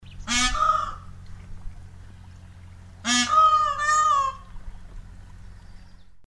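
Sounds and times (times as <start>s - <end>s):
peacock calling: 0.0s - 1.2s, 2.1s - 5.8s.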